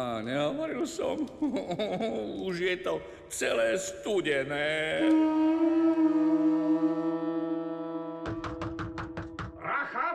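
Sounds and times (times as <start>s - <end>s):
speech: 0.0s - 6.4s
laughter: 1.0s - 2.4s
sustained droning tone: 5.0s - 9.4s
fists pounding on a wooden door: 8.3s - 9.6s.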